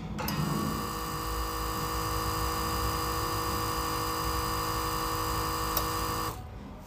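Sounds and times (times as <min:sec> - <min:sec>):
small aquarium pump humming with buzzing whining motor: 0:00.2 - 0:06.4.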